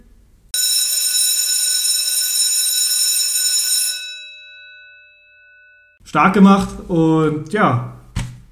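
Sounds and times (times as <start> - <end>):
loud electric bell ringing with a harsh metallic buzz: 0.6 - 6.0
speech: 6.1 - 8.0.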